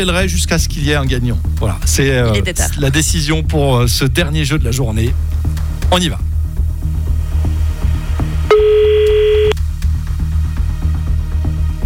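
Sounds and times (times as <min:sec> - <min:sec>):
speech: 0:00.0 - 0:06.3
continuous rhythmic music bed: 0:00.0 - 0:10.8
telephone ringing tone: 0:08.5 - 0:09.6.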